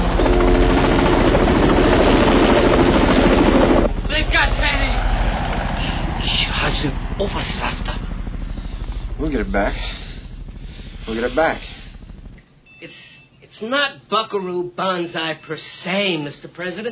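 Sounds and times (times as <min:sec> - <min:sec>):
helicopter rotor thumping: 0:00.0 - 0:12.6
indistinct voices: 0:02.6 - 0:13.2
speech: 0:09.4 - 0:10.0, 0:11.1 - 0:11.7, 0:12.8 - 0:16.8.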